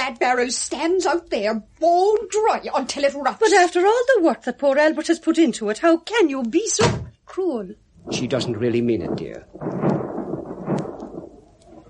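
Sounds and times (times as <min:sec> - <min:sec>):
first raindrops: 0:00.0 - 0:11.8
speech: 0:00.1 - 0:10.0
deep rolling rumble of thunder: 0:08.0 - 0:11.8.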